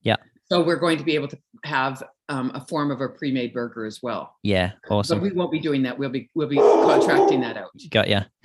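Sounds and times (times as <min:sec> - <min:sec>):
speech: 0:00.0 - 0:08.4
dog barking loudly and excitedly: 0:06.6 - 0:07.5.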